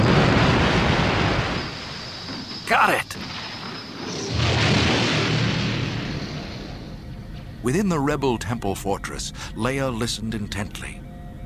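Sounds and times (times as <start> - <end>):
explosion of a ball of super-hot gas: 0.0 - 7.7
speech: 2.7 - 3.4, 7.6 - 11.0.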